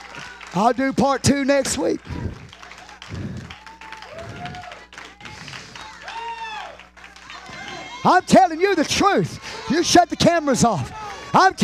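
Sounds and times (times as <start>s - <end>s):
people cheering and whooping: 0.0s - 0.9s, 1.8s - 11.6s
audience applauding in praise: 0.0s - 11.6s
speech: 0.5s - 2.4s, 8.0s - 11.6s.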